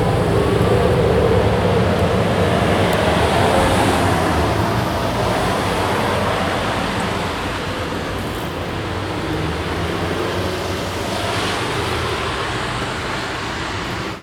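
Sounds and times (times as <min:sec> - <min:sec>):
street sweeper running in Fürth: 0:00.0 - 0:14.1.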